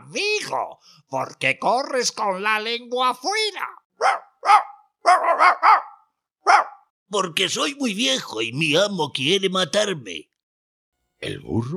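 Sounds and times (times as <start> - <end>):
speech: 0.1 - 5.9, 6.5 - 10.3, 11.2 - 11.7
old hunting dog barking: 4.0 - 6.9.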